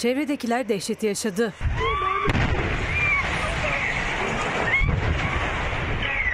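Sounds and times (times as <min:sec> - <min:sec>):
speech: 0:00.0 - 0:02.5
gas explosion at a fuel station: 0:02.3 - 0:06.3.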